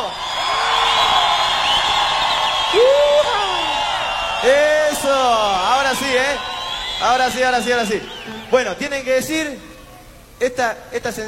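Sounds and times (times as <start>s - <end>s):
rising whoops from audience: 0.0s - 7.2s
audience shouting and cheering at a live music performance: 0.0s - 10.0s
speech: 6.2s - 9.7s, 10.4s - 11.2s.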